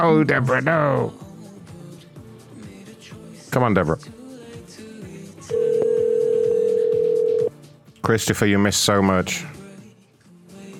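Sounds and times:
speech: 0.0s - 1.2s, 3.5s - 4.2s, 8.0s - 9.5s
telephone ringing with a steady electronic tone: 5.5s - 7.5s.

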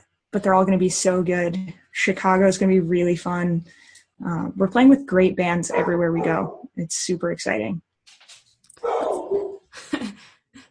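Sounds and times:
speech: 0.3s - 7.9s
dog barking in the house: 5.7s - 6.7s, 8.8s - 9.6s.

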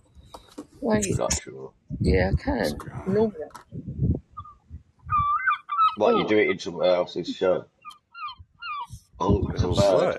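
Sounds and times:
speech: 0.8s - 4.1s, 6.0s - 7.7s, 9.2s - 10.1s
seagull squawking calls: 4.4s - 7.0s, 7.8s - 9.0s.

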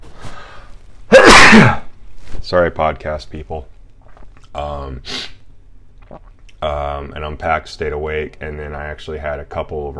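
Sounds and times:
person sneezing: 1.1s - 1.9s
speech: 1.5s - 1.8s, 2.5s - 3.7s, 4.6s - 5.3s, 6.1s - 9.9s.

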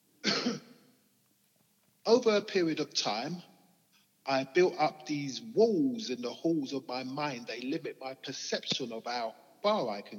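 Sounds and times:
person coughing: 0.2s - 0.8s
speech: 2.1s - 3.5s, 4.2s - 10.1s.

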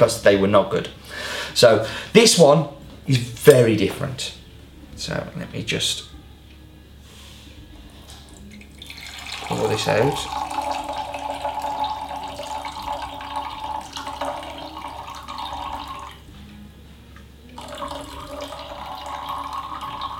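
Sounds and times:
speech: 0.0s - 4.4s, 5.0s - 6.2s, 9.5s - 10.4s
coffee being poured: 8.2s - 16.3s, 17.5s - 20.1s.

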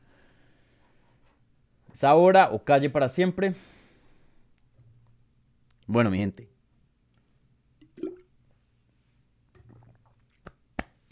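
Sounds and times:
speech: 2.0s - 3.8s, 5.9s - 6.5s
water being gulped or splashing: 7.8s - 8.3s, 9.6s - 10.3s.

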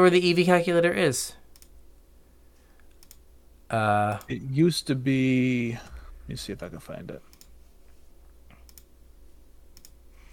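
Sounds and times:
speech: 0.0s - 1.4s, 3.7s - 7.3s
steady low hum: 0.0s - 10.3s
computer mouse clicks: 1.5s - 1.7s, 2.8s - 3.2s, 7.3s - 7.6s, 8.5s - 8.9s, 9.8s - 10.0s.

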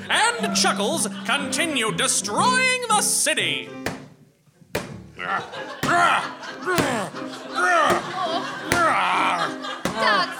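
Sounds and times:
laughter: 0.2s - 1.7s, 5.2s - 10.3s
speech: 0.4s - 4.0s, 5.2s - 10.1s
heavy punches thudding on a tree: 3.8s - 4.2s, 4.7s - 5.1s, 5.8s - 10.3s
person grunting and crying out: 5.2s - 8.2s, 8.7s - 10.2s.

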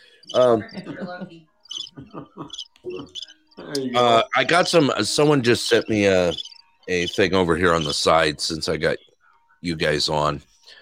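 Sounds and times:
cricket chirping: 0.2s - 0.9s, 1.6s - 3.6s, 5.6s - 7.2s
speech: 0.2s - 10.5s
murmuring voices: 0.3s - 8.0s
laughter: 0.6s - 3.2s.

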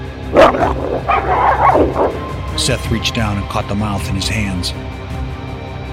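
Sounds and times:
wolf yelping and barking: 0.3s - 2.4s
low rumble: 0.3s - 3.0s
speech: 0.3s - 5.2s.

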